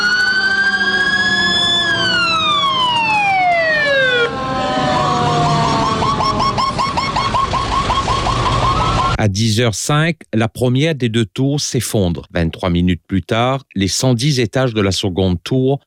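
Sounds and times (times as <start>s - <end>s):
emergency siren wailing with a long tone sliding down in pitch: 0.0s - 9.2s
steady traffic rumble: 0.0s - 9.4s
speech: 9.2s - 15.8s.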